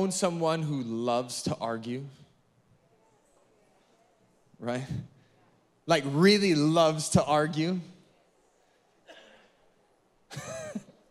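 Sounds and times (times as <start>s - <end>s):
speech: 0.0s - 2.2s, 4.6s - 5.1s, 5.9s - 7.9s, 10.3s - 10.9s
audience member coughing: 9.0s - 9.6s, 10.3s - 11.0s.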